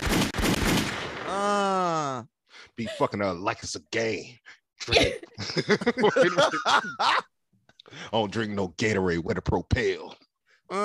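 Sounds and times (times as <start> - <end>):
rapid gunshot sound effects: 0.0 - 1.3
speech: 2.7 - 7.3, 7.9 - 10.8
laughter: 2.8 - 3.4, 4.8 - 7.3.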